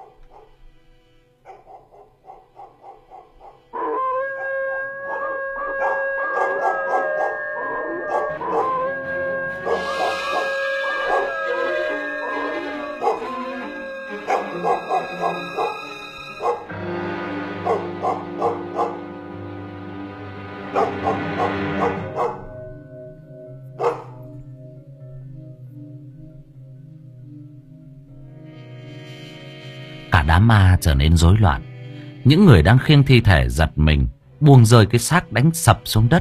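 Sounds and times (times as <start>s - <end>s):
pack of village dogs barking and howling: 0.0s - 0.5s, 1.4s - 19.3s, 20.6s - 23.0s, 23.7s - 24.4s
speech: 30.5s - 36.2s.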